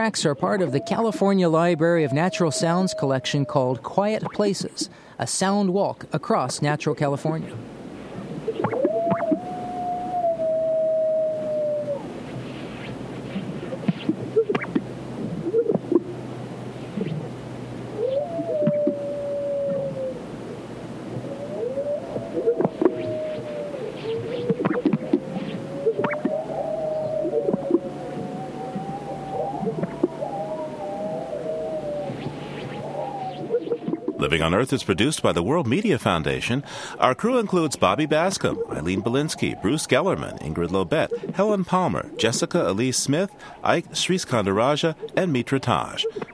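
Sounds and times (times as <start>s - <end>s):
coyote howls across arid sagebrush: 0.0s - 4.9s, 8.4s - 12.4s, 13.6s - 16.1s, 17.9s - 34.6s, 37.3s - 43.7s
greater sage grouse calls across arid sagebrush: 0.0s - 5.0s, 7.4s - 20.5s, 21.1s - 46.3s
speech: 0.0s - 7.7s, 34.6s - 46.3s.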